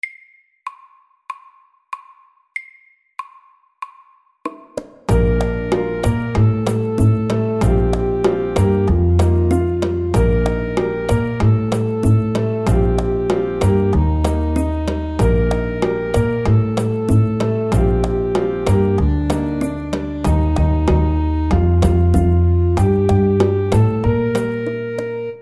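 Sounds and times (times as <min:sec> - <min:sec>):
slow spicy salsa music: 0:05.1 - 0:25.4.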